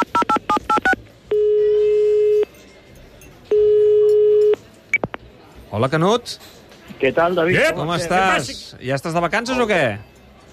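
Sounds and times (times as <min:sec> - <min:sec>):
landline keypad dialing beeps: 0:00.0 - 0:02.5, 0:03.5 - 0:05.2
speech: 0:05.8 - 0:10.5.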